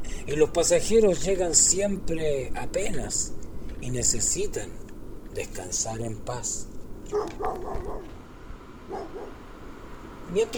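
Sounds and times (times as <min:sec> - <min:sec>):
speech: 0:00.2 - 0:08.2, 0:08.9 - 0:09.4, 0:10.3 - 0:10.5
dog barking toward a village house: 0:07.1 - 0:08.2, 0:08.8 - 0:09.5.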